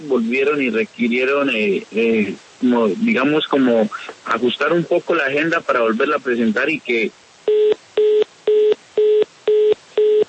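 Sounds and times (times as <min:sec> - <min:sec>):
speech: 0:00.0 - 0:07.2
phone line busy tone beeps after a dropped call: 0:07.5 - 0:10.2.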